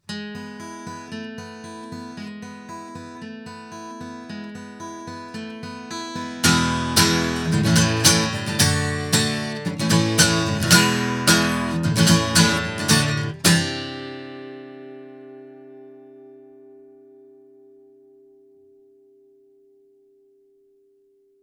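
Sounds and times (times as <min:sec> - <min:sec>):
guitar recorded through a Shure Beta58A microphone: 0:00.0 - 0:20.6.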